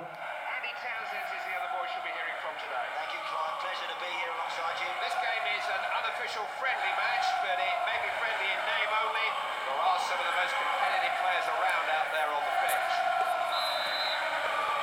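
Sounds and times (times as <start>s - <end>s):
commentary-like voices: 0.0s - 14.8s
steady roar of a stadium crowd: 0.0s - 14.8s
referee's whistle starting a football match in a mobile video game: 13.3s - 14.5s.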